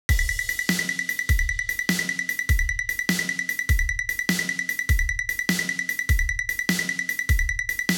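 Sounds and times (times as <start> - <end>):
fine shuffle rhythm: 0.1 - 7.9.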